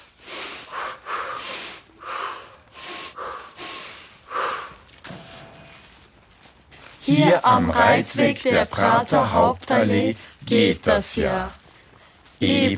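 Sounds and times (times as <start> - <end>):
heavy breathing while walking: 0.0 - 6.0
speech: 7.1 - 11.6, 12.4 - 12.7.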